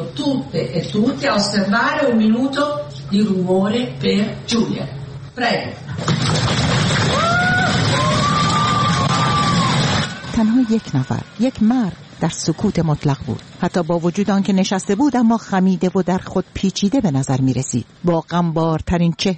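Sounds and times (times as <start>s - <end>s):
speech: 0.2s - 6.4s, 10.4s - 19.3s
lawmakers clapping: 6.1s - 10.4s
lawmakers cheering: 6.7s - 11.7s.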